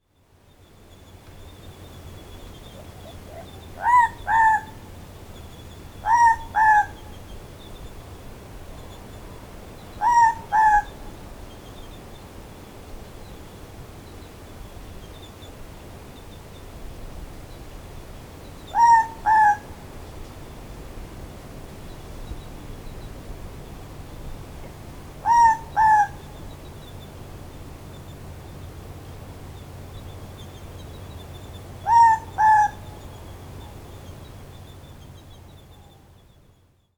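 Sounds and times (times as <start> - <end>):
Ninox novaeseelandiae owl calling: 2.7 - 4.9, 6.0 - 7.2, 10.0 - 11.0, 18.7 - 19.8, 25.2 - 26.5, 31.8 - 33.8.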